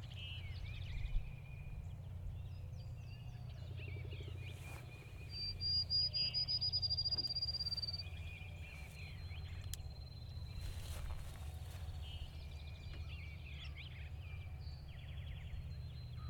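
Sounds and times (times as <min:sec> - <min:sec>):
birds chirping and trilling near a lake in early spring: 0:00.0 - 0:16.2
rustling: 0:10.5 - 0:12.4.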